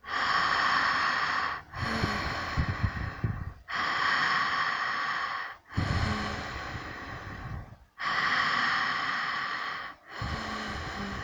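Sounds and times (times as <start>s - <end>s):
relaxed breathing in and out through an open mouth during a breathing practice: 0.0s - 11.2s.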